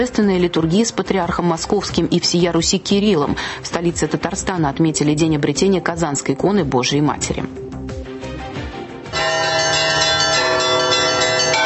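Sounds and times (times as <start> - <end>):
speech: 0.0 - 7.6
melodic church bells of the Kazan Kremlin in Tatarstan Russia ringing a peal: 9.1 - 11.6.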